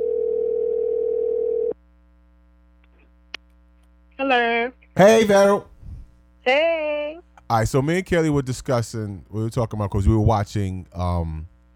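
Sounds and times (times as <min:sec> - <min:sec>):
video call electronic ringing tone: 0:00.0 - 0:01.8
speech: 0:04.2 - 0:05.7, 0:06.4 - 0:11.5.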